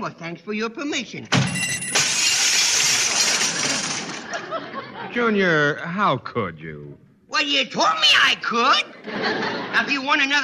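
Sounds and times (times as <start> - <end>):
speech: 0.0 - 2.0, 4.3 - 10.4
door slamming: 1.3 - 4.3
newly installed glass pane in a door shattering: 1.3 - 4.4
falling glass shards tinkling: 1.5 - 4.2
laughter: 3.1 - 5.8, 8.6 - 10.4.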